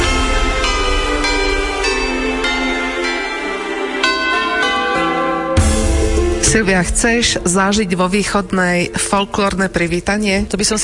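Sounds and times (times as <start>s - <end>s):
church bells ringing: 0.0s - 7.7s
speech: 6.5s - 10.8s.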